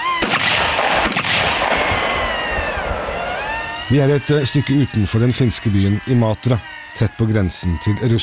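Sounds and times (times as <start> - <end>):
bursts of gunfire at shooting practice over open ground: 0.0 - 4.8
speech: 3.9 - 8.2.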